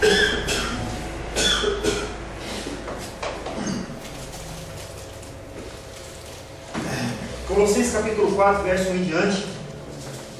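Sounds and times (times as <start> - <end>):
person coughing: 0.0 - 2.2
speech: 7.6 - 9.6.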